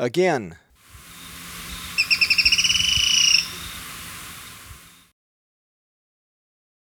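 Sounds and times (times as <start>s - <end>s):
black-throated tody-tyrant clicking call in Ecuador: 0.9s - 5.0s.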